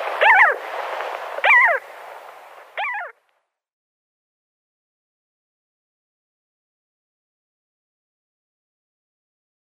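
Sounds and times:
Arctic skua calling with nasal wailing notes at the nest: 0:00.2 - 0:00.6, 0:01.4 - 0:01.8, 0:02.8 - 0:03.2.

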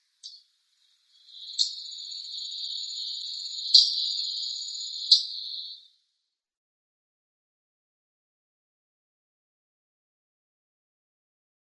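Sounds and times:
brown thrasher calling: 0:01.2 - 0:05.8.

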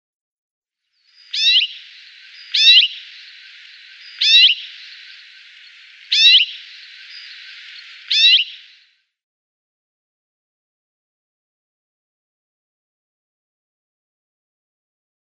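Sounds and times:
Common Rosefinch calls: 0:01.1 - 0:08.8.

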